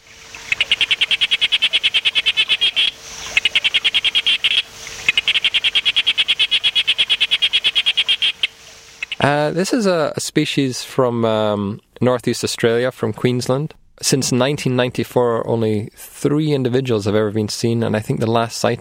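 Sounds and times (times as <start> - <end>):
sharp-snouted day frog calling in sharp clicking pulses: 0.3 - 9.3
speech: 9.2 - 18.7.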